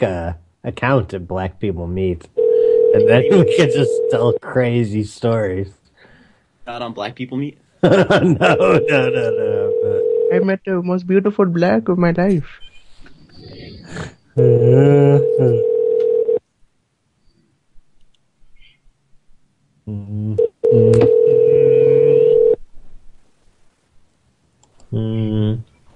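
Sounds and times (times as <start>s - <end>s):
speech: 0.0s - 5.8s, 6.7s - 12.7s, 13.4s - 15.7s, 24.9s - 25.2s
telephone ringing: 2.4s - 4.4s, 8.5s - 10.5s, 15.2s - 16.4s, 20.6s - 22.6s
laughter: 7.8s - 10.0s
telephone dialing: 15.6s - 16.4s, 20.8s - 21.5s.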